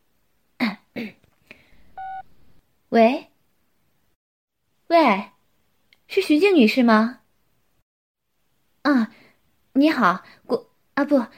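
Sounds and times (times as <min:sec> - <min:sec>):
speech: 0:01.0 - 0:01.2, 0:02.9 - 0:03.3, 0:04.9 - 0:05.3, 0:06.1 - 0:07.2, 0:08.8 - 0:09.2, 0:09.8 - 0:11.3
mobile phone incoming call tone: 0:02.0 - 0:02.3.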